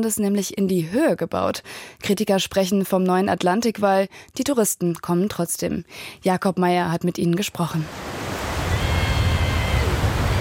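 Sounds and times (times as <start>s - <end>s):
speech: 0.0s - 8.3s
gentle North Sea swell washing onto a Belgian beach: 7.8s - 10.3s
wind noise: 7.9s - 10.3s.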